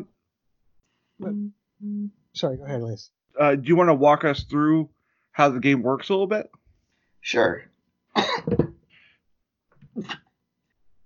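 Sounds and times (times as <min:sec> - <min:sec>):
speech: 0:01.2 - 0:06.6, 0:07.2 - 0:08.7, 0:10.0 - 0:10.2
sharp harsh cough: 0:08.1 - 0:08.7, 0:09.9 - 0:10.4
softer throat-clearing cough: 0:09.8 - 0:10.4.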